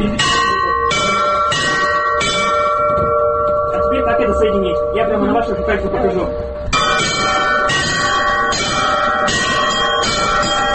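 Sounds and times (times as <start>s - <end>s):
church bells including small podzvonny bells ringing in a bell-ringing lesson: 0.0s - 10.7s
speech: 5.7s - 7.4s.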